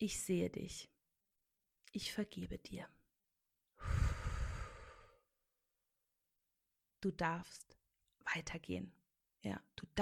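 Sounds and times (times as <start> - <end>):
speech: 0.0 - 0.9, 1.9 - 3.0, 7.0 - 10.0
deep breath taken during a guided breathing exercise: 3.8 - 5.3.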